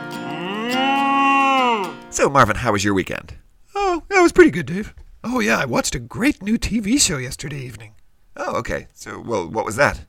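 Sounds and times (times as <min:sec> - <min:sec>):
cow mooing: 0:00.0 - 0:02.0
speech: 0:02.2 - 0:10.0.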